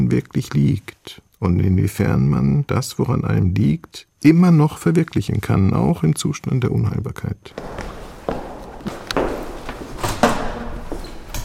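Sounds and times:
speech: 0.1 - 7.9
door into a hospice opening: 7.5 - 11.4
shuffling footsteps: 7.5 - 11.4.

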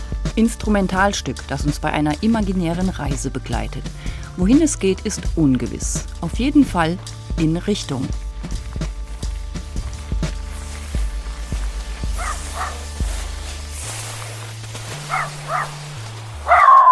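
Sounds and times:
instrumental music bed with steady low bass notes: 0.0 - 16.9
speech: 0.4 - 8.6
small female dog yipping: 12.2 - 12.8, 15.1 - 15.8, 16.5 - 16.9.

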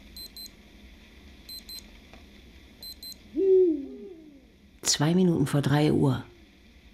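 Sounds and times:
high electronic beeps: 0.2 - 0.5, 1.5 - 1.8
Eurasian eagle-owl hooting while hunting on a tape recording: 3.2 - 4.6
speech: 5.0 - 6.3.

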